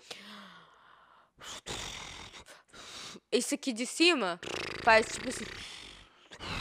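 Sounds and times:
person imitating a woman's loud snoring: 1.4 - 2.5, 4.4 - 6.5
speech: 3.3 - 5.8.

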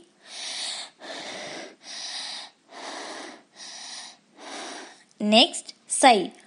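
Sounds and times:
person imitating labored wheezing asthmatic breathing: 0.0 - 5.1
speech: 5.2 - 6.4.

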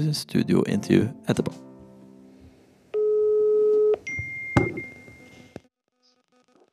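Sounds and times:
speech: 0.0 - 1.7
telephone ringback tone: 3.0 - 5.5
thin higher electronic tone as the telephone line connects: 3.0 - 6.2.

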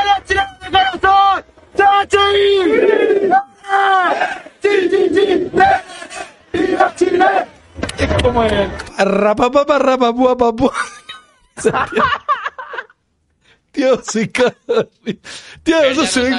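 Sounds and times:
man shouting in long strained bursts: 0.0 - 7.5, 15.7 - 16.3
steady roar of a large stadium crowd: 0.0 - 8.9
speech: 8.4 - 10.9, 11.6 - 12.3, 13.8 - 16.3
laughter: 10.6 - 13.0, 14.0 - 15.4.

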